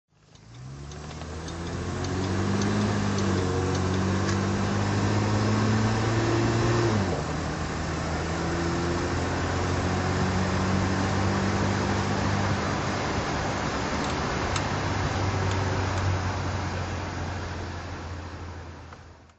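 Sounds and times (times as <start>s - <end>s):
Jaguar Mk2 car driving: 0.1s - 19.3s.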